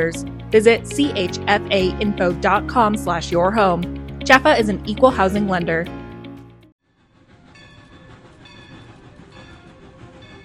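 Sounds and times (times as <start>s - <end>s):
speech: 0.0s - 6.0s
Cumbres and Toltec Scenic Railroad train rumbling along tracks: 7.0s - 10.4s.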